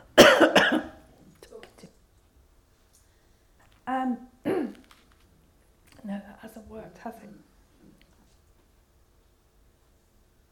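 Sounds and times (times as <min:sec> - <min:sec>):
person coughing harshly: 0:00.0 - 0:01.0, 0:04.5 - 0:04.8
speech: 0:04.0 - 0:04.3, 0:06.7 - 0:07.5.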